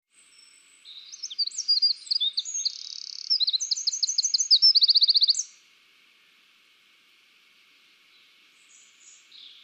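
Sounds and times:
Eurasian wren song, Troglodytes troglodytes: 0.1 - 5.6, 7.8 - 9.6.

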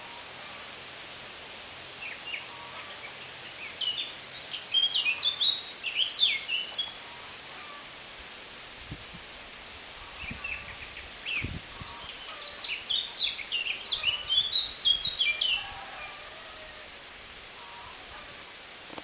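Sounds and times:
Eurasian blackcap Sylvia atricapilla warbling song: 2.0 - 7.8, 10.0 - 16.1.

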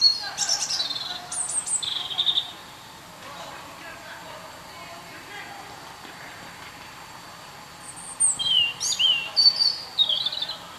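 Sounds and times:
European robin Erithacus rubecula singing: 0.0 - 2.9, 7.4 - 10.7.

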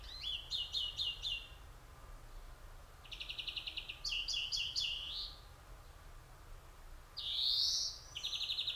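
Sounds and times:
European greenfinch rapid chirps: 0.0 - 1.6, 3.1 - 5.4, 7.2 - 8.7.

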